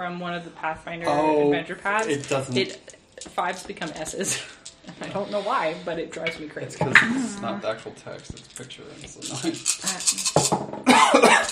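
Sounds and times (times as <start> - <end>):
speech: 0.0 - 11.5
person coughing roughly: 10.9 - 11.5.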